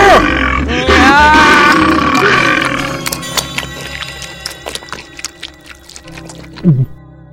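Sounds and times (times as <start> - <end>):
wolf growling deep and throaty: 0.2 - 7.0
low gulping grunt: 0.3 - 3.0, 4.7 - 7.0
wolf chomping and crunching bites: 1.5 - 7.0.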